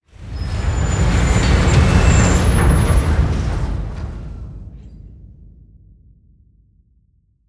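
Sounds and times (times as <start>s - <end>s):
floor elevator gears stopping: 0.2s - 4.7s.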